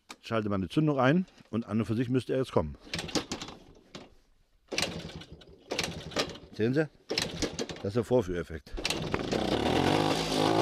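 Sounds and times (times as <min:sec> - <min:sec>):
speech: 0:00.3 - 0:03.2, 0:06.6 - 0:07.2, 0:07.8 - 0:09.6
vintage DKW two-stroke motorcycle engine running: 0:04.7 - 0:06.5, 0:08.8 - 0:10.6.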